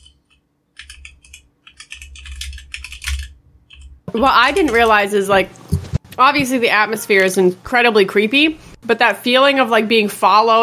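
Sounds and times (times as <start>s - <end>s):
rapid typing on a computer keyboard: 0.0s - 4.0s
speech: 4.2s - 5.6s, 6.2s - 10.6s.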